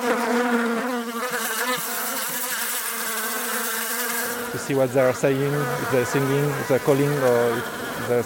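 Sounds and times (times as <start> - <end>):
bees buzzing in flight: 0.0 - 8.2
speech: 4.6 - 8.2.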